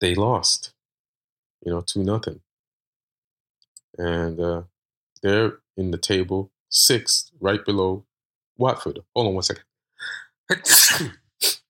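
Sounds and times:
speech: 0.0 - 0.6, 1.6 - 2.4, 4.0 - 11.6
person sneezing: 10.5 - 11.6
breathy sniff: 10.9 - 11.6.

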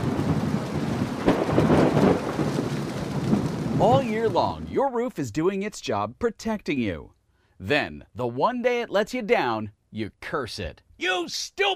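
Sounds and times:
heavy rain pouring: 0.0 - 4.7
thunder rumbling: 0.0 - 4.8
speech: 3.8 - 11.7.

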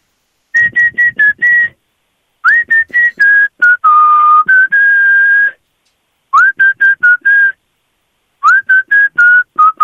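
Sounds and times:
game player whistling a pop song melody: 0.6 - 1.8, 2.4 - 5.6, 6.3 - 7.6, 8.4 - 9.8.

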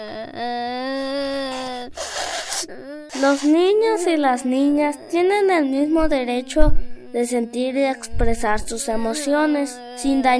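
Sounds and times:
child crying: 0.0 - 4.1, 4.8 - 10.3
child breathy sniffle: 0.9 - 3.8
speech: 2.6 - 10.3.

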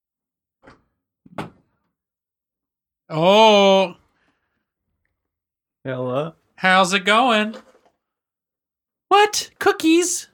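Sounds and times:
door thudding as it swings and settles: 1.3 - 1.7
speech: 3.1 - 4.0, 5.8 - 7.7, 9.1 - 10.3.

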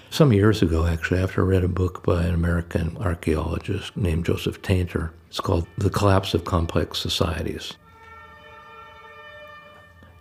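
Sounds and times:
speech: 0.2 - 7.8
ambulance and police sirens wailing outside: 5.5 - 10.1.

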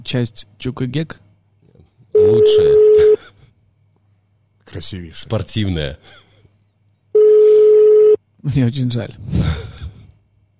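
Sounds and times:
speech: 0.0 - 1.2, 2.2 - 3.4, 4.7 - 6.2, 8.4 - 9.7
electronic ringback tone from a phone line: 2.2 - 3.2, 7.2 - 8.2.

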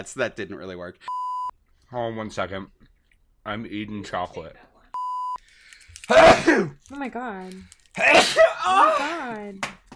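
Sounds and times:
speech: 0.0 - 1.2, 1.9 - 2.8, 3.4 - 4.7, 6.1 - 9.8
hard sneeze with a falling groan: 6.1 - 6.8, 8.0 - 9.3.

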